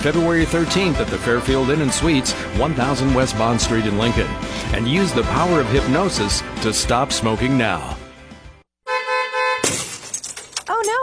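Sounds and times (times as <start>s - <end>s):
speech: 0.0s - 8.0s
car horn blaring: 8.8s - 9.8s
car windshield glass smashing with scattered tinkling fragments: 9.6s - 10.9s.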